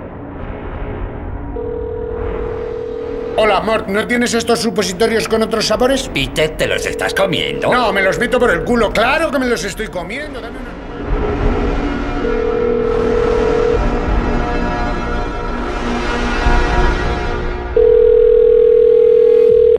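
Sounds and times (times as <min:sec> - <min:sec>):
constant low rumble: 0:00.0 - 0:18.4
telephone ringing tone: 0:01.6 - 0:03.8, 0:06.3 - 0:09.2, 0:12.2 - 0:14.2, 0:17.8 - 0:19.7
speech: 0:03.4 - 0:11.5.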